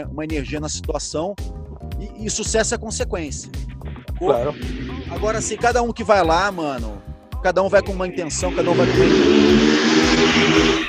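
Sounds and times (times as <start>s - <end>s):
speech: 0.0s - 10.8s
motorcycle roaring past outside in Guarulhos: 8.4s - 10.8s.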